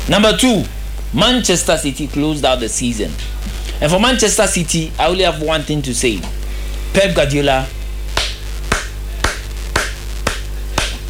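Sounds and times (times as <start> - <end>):
constant low hum: 0.0 - 11.0
speech: 0.1 - 7.7
person clapping hands: 8.2 - 11.0.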